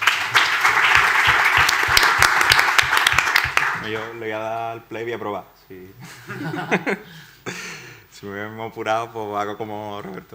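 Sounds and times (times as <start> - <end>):
audience applauding: 0.0 - 4.2
speech: 3.9 - 10.3
laughter: 6.0 - 7.2.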